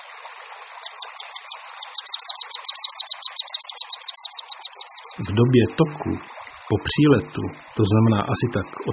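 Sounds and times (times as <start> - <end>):
common sandpiper piping and twittering: 0.8 - 5.8
speech: 5.2 - 8.9.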